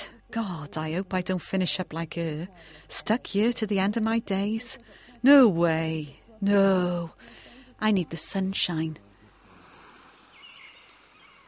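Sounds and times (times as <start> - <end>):
speech: 0.4 - 9.1
ocean waves gently lapping on a beach: 9.3 - 11.4.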